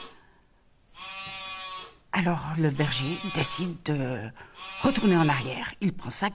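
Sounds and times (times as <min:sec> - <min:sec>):
lost sheep bleating at night: 0:00.0 - 0:00.2, 0:00.9 - 0:02.0, 0:02.6 - 0:06.3
faint hiss: 0:00.0 - 0:06.3
speech: 0:02.2 - 0:06.3.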